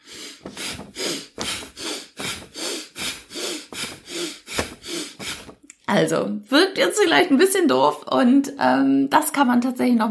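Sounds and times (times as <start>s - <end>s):
rhythmic breathing in and out while raising and lowering arms: 0.0s - 5.6s
speech: 5.9s - 10.0s.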